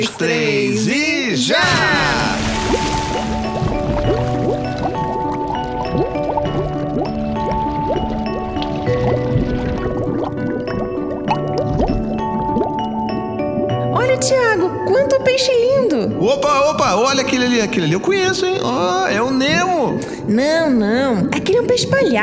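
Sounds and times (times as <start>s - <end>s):
speech: 0.0s - 1.9s, 14.2s - 22.2s
something plunging into water: 1.6s - 5.7s
underwater bubbling and gurgling: 1.8s - 14.0s.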